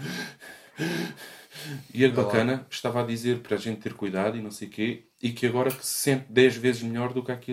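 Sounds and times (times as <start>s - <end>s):
person imitating laboured wheezy breathing of a woman with flu: 0.0s - 1.9s
speech: 0.8s - 7.5s.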